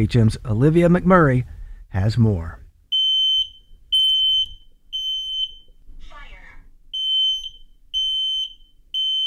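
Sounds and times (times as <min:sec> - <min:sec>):
speech: 0:00.0 - 0:02.6
home smoke alarm beeping during a button test: 0:02.9 - 0:05.8, 0:06.9 - 0:09.2.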